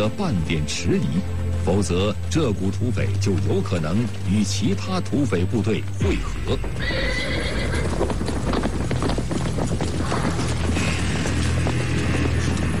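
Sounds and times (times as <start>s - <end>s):
speech: 0.0s - 8.2s
horse galloping fast through mountains after dark: 2.4s - 12.7s
horse whinnying: 6.6s - 8.7s.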